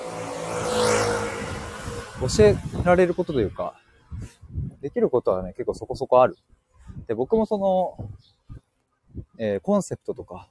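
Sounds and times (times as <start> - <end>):
motorcycle passing by: 0.0 - 4.2
speech: 2.2 - 8.4, 9.4 - 10.4.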